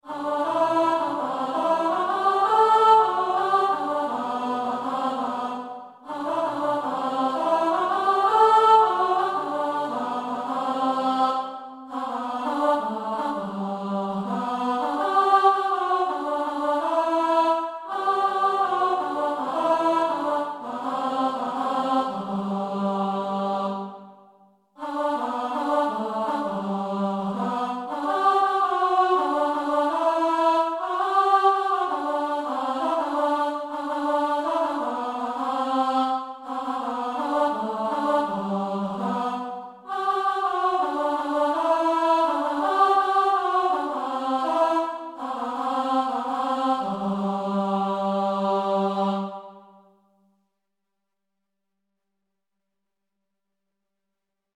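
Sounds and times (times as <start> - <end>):
chorus with soprano singing: 0.0 - 50.0.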